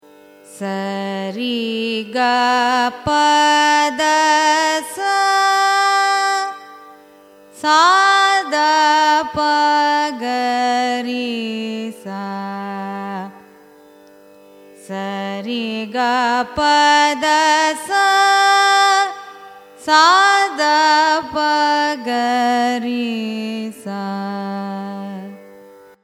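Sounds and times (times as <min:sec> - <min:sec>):
carnatic music ascending and descending raga scale: 0:00.0 - 0:26.0.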